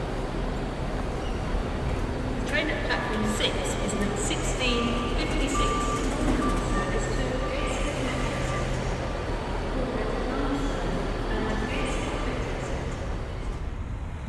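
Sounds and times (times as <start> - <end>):
steady roar of traffic and engines on a busy street in Newcastle: 0.0 - 14.2
truck reversing alarm beeps: 4.1 - 9.3.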